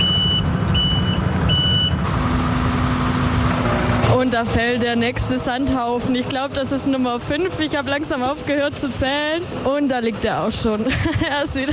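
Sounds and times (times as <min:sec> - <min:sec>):
truck reversing alarm beeping while delivering sand: 0:00.0 - 0:02.8
truck diesel engine rumbling: 0:00.0 - 0:11.7
speech: 0:04.2 - 0:11.7
laughter: 0:10.8 - 0:11.7.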